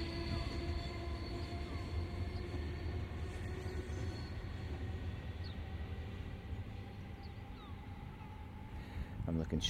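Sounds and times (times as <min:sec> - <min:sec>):
train pulling out of station with wheels rattling on track: 0:00.0 - 0:09.6
speech: 0:09.3 - 0:09.6.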